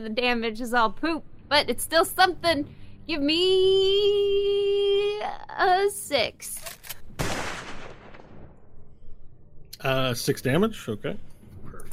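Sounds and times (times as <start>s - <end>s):
speech: 0.0s - 7.0s, 9.8s - 11.3s
gunfire sound effect for bullets fired at a leathery-skinned creature: 7.2s - 8.6s
loud gunfire blast: 7.2s - 8.7s.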